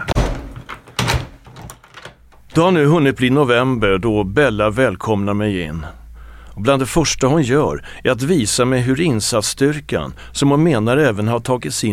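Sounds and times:
heavy thuds on a damaged apartment front door being forced open: 0.0s - 2.6s
speech: 2.6s - 6.0s, 6.6s - 11.9s.

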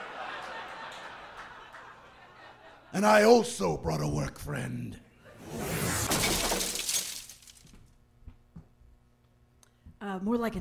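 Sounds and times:
laughter: 0.0s - 3.1s
speech: 3.0s - 5.0s, 10.2s - 10.5s
shattering glass from crashing through a boat's cabin top: 5.5s - 7.8s
splintering debris from a boat's cabin top: 5.6s - 7.8s
tinkling glass fragments: 6.1s - 7.7s.

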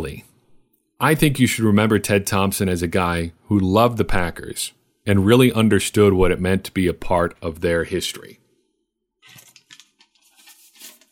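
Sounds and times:
speech: 0.0s - 0.3s, 1.0s - 8.4s
paper notes rustling: 9.2s - 11.1s.

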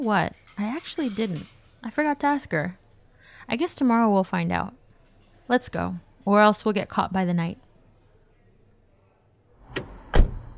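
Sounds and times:
speech: 0.0s - 2.8s, 3.5s - 4.8s, 5.5s - 7.6s
car doors shutting as people get into the car: 9.6s - 10.5s.

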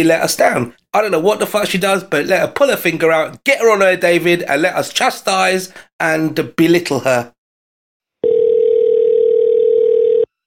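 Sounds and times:
speech: 0.0s - 7.4s
telephone ringback tone during outgoing call: 8.2s - 10.3s.

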